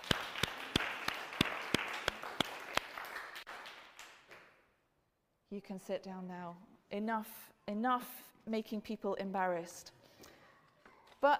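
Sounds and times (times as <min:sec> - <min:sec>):
indoor crowd applauding: 0:00.0 - 0:04.4
one sharp steady clap on a regular beat: 0:00.0 - 0:04.5
speech: 0:05.5 - 0:10.0.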